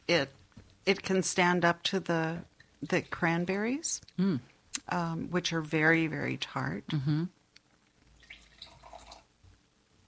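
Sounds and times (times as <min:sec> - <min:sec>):
speech: 0:00.1 - 0:07.4
wine pouring into a glass: 0:08.2 - 0:09.3.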